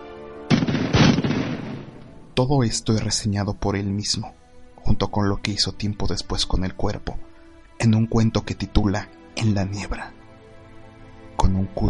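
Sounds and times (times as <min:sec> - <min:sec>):
rifle gunshot: 0:00.5 - 0:02.1
speech: 0:02.4 - 0:10.2, 0:11.4 - 0:11.8.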